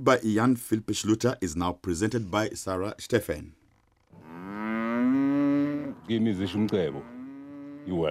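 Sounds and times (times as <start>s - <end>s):
speech: 0.0s - 3.6s, 6.1s - 7.2s, 7.8s - 8.0s
cows mooing: 4.1s - 8.0s.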